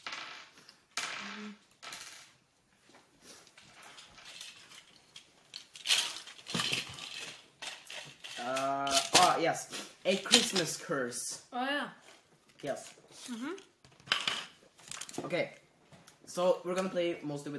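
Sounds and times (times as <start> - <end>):
dice clattering on a tabletop: 0.0 - 2.4, 3.8 - 9.3
speech: 9.5 - 12.0, 12.6 - 13.7, 15.2 - 15.6, 16.3 - 17.5.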